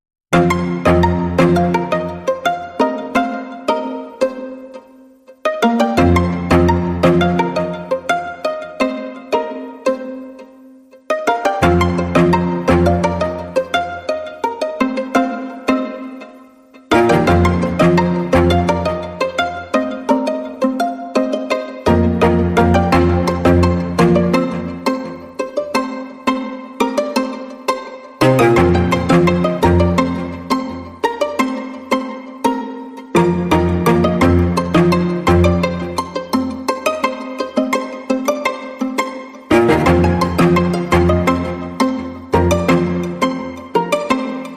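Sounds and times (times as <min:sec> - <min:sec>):
strings playing without legato: 0:00.3 - 0:44.5.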